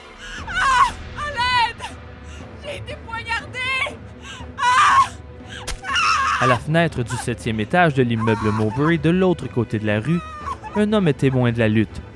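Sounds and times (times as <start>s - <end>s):
woman screaming in anguish while being stabbed: 0.2s - 2.0s, 2.7s - 4.0s, 4.6s - 6.6s, 8.2s - 8.9s
speech: 6.4s - 12.1s.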